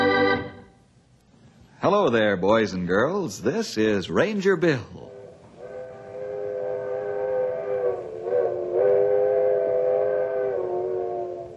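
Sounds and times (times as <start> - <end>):
speech: 1.8 - 5.2
old-fashioned coal-burning steam locomotive whistle: 5.1 - 11.5.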